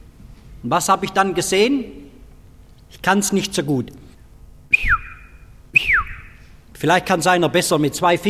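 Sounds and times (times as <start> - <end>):
speech: 0.6 - 2.0, 2.9 - 4.0, 4.8 - 5.0, 6.8 - 8.2
person imitating a marmot alarm whistle: 4.7 - 6.5.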